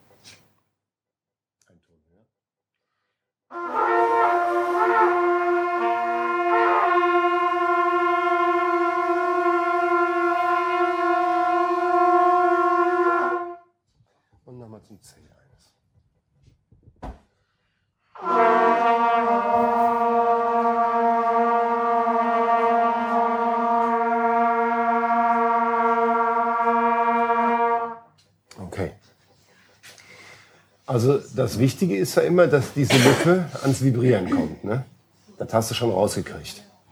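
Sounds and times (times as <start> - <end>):
wind instruments sounding a sustained G note together in a group lesson: 3.6 - 13.6, 18.2 - 28.0
speech: 31.0 - 34.9, 35.5 - 36.7.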